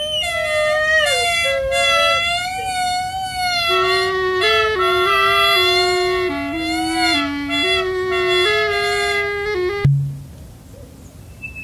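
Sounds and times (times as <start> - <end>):
two loud brassy horn-like calls of creatures bellowing: 0.2 - 9.9
short thud of an egg dropped into a sound funnel: 9.9 - 10.3.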